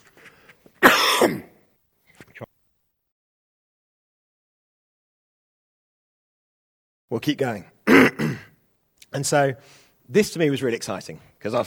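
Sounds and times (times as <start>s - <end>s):
single loud harsh cough: 0.8s - 1.6s, 7.9s - 8.6s
speech: 7.1s - 8.5s, 9.1s - 11.6s
quieter throat clearing: 7.9s - 8.6s.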